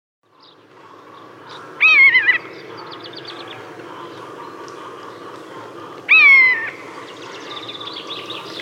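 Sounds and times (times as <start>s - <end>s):
common buzzard plaintive descending mewing cries: 1.8s - 3.3s, 6.1s - 8.5s.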